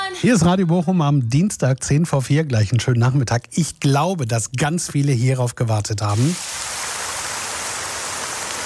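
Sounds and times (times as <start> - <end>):
speech: 0.2 - 6.6
rain falling: 6.2 - 8.6.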